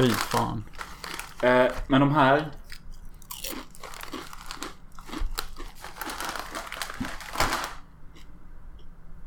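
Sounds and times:
speech: 0:00.0 - 0:00.8, 0:01.4 - 0:02.6
potato chips being chewed: 0:00.0 - 0:01.9, 0:02.5 - 0:08.3.

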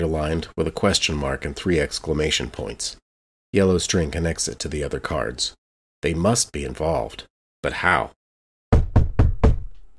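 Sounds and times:
speech: 0:00.0 - 0:08.2
firm knocking on an apartment door: 0:08.7 - 0:09.8.

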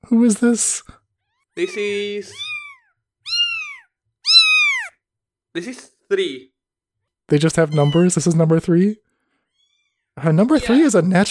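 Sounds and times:
speech: 0:00.0 - 0:01.0, 0:01.6 - 0:02.5, 0:05.6 - 0:06.5, 0:07.3 - 0:09.1, 0:10.2 - 0:11.2
kitten meowing: 0:01.2 - 0:05.0, 0:07.6 - 0:08.3.

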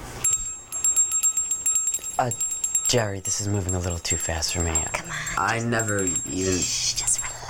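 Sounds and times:
brass bell rung rapidly: 0:00.2 - 0:06.7
speech: 0:02.1 - 0:07.3.

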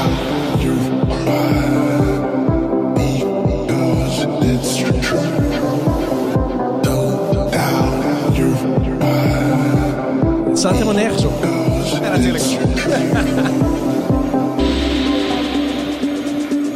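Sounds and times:
newly released electronic music single: 0:00.0 - 0:16.7
laughter: 0:12.0 - 0:14.4.

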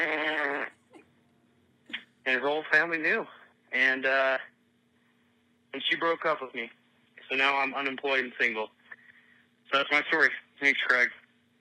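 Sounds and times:
voice blowing a raspberry imitating a fart: 0:00.0 - 0:01.1
speech: 0:02.3 - 0:04.5, 0:05.7 - 0:08.8, 0:09.7 - 0:11.2.

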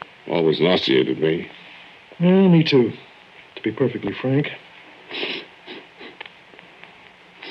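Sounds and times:
speech: 0:00.2 - 0:01.6, 0:02.2 - 0:05.3
man sniffing the air: 0:05.1 - 0:06.2.

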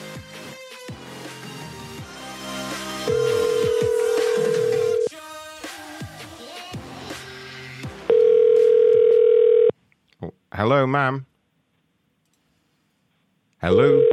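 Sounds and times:
loud steady low electronic telephone tone while calling back: 0:03.1 - 0:05.1, 0:08.1 - 0:09.8, 0:13.7 - 0:14.1
speech: 0:10.6 - 0:11.3, 0:13.6 - 0:14.1.

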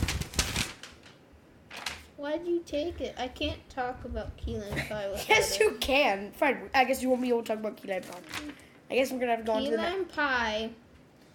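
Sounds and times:
paper shaken and rustled: 0:00.0 - 0:02.1, 0:07.1 - 0:08.7
speech: 0:02.2 - 0:10.8.

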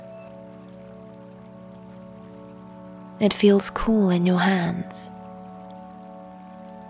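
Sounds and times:
narrow creek water trickling over stones among moss-covered rocks: 0:00.4 - 0:04.3, 0:05.1 - 0:06.8
speech: 0:03.2 - 0:05.1.

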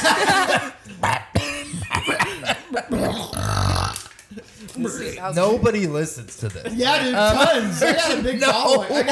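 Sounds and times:
laughter: 0:00.0 - 0:03.0, 0:06.5 - 0:09.1
cough-like sound: 0:00.0 - 0:04.0
person burping loudly: 0:00.6 - 0:04.1
speech: 0:05.1 - 0:09.1.

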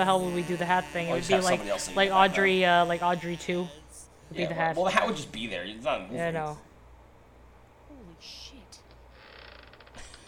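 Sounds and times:
speech: 0:00.0 - 0:06.7, 0:08.2 - 0:08.6
door creaking open with groaning hinge squeaks: 0:09.0 - 0:10.2.

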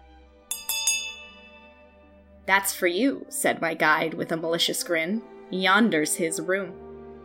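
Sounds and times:
bell ringing sharply: 0:00.5 - 0:01.8
speech: 0:02.5 - 0:06.8.

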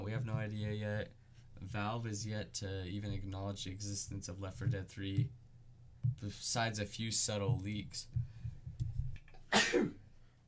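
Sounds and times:
speech: 0:00.1 - 0:05.4, 0:06.1 - 0:08.3, 0:09.6 - 0:10.0
sneeze: 0:09.5 - 0:10.0.

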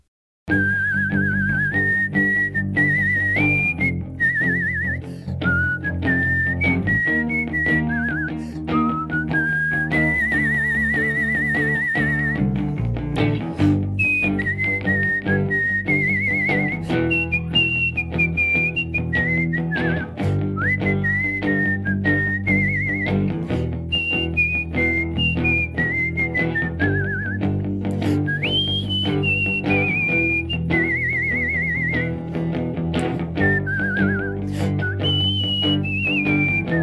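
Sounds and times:
skilled human whistler performing a melody: 0:00.5 - 0:32.4, 0:33.0 - 0:36.8.

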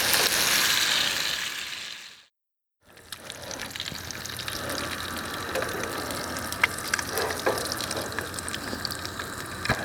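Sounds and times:
breakfast frying at a campsite in a provincial park: 0:00.0 - 0:02.2, 0:02.9 - 0:09.8.

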